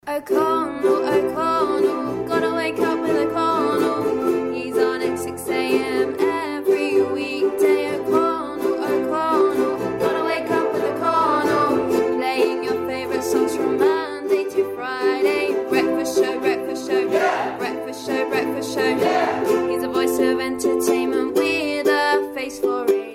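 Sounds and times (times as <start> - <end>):
ukulele orchestra jingle: 0.1 - 23.1.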